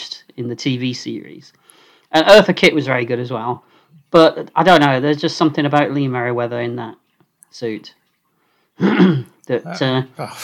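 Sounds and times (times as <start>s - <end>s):
speech: 0.4s - 8.0s, 8.8s - 10.4s
person clearing their throat: 8.8s - 9.4s.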